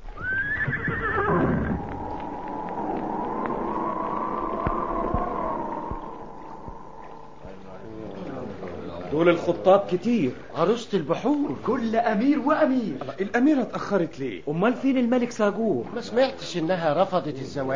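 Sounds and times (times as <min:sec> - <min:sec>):
horse neighing: 0:00.1 - 0:02.0
steady low drone: 0:01.2 - 0:09.1
speech: 0:09.2 - 0:17.7.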